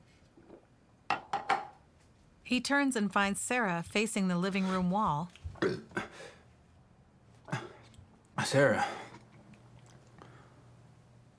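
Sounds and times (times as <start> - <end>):
glass set down on a hard counter: 1.1 - 1.7
speech: 2.5 - 5.9, 8.5 - 9.0.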